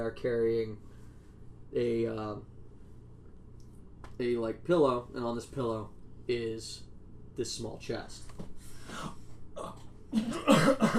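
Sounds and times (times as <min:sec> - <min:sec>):
speech: 0:00.0 - 0:00.9, 0:01.7 - 0:02.5, 0:04.2 - 0:10.9
person coughing: 0:09.6 - 0:10.9.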